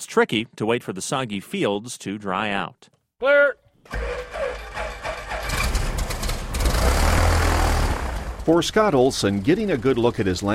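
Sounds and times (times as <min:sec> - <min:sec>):
speech: 0:00.0 - 0:04.3, 0:08.5 - 0:10.5
farmer's small plane engine starting in northeast Nebraska: 0:03.9 - 0:10.3.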